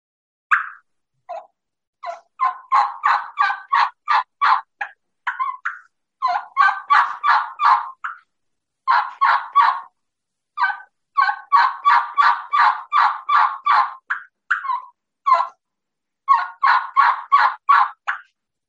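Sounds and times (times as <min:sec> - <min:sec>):
hen turkey yelps produced on a game call: 0:00.5 - 0:10.0, 0:10.6 - 0:15.6, 0:16.2 - 0:18.3.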